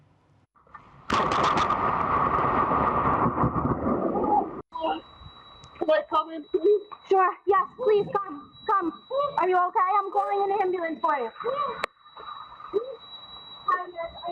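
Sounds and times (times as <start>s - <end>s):
lightning crack: 1.0s - 4.6s
heavy rumbling thunder: 1.1s - 4.6s
people talking: 4.7s - 5.0s, 5.8s - 11.9s, 12.8s - 13.0s, 13.7s - 14.3s.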